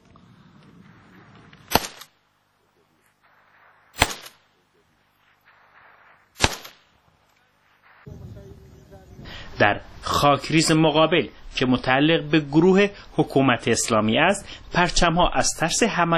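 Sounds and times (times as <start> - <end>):
gunshots fired by Kurdish Peshmerga forces toward Islamic State positions in Iraq: 0.8 - 2.2, 3.2 - 8.6
speech: 9.6 - 16.1.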